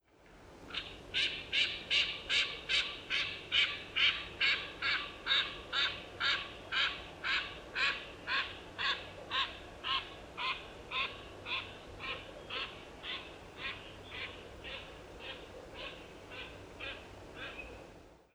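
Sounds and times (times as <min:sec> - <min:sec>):
common teal Anas crecca: 0:00.7 - 0:17.7.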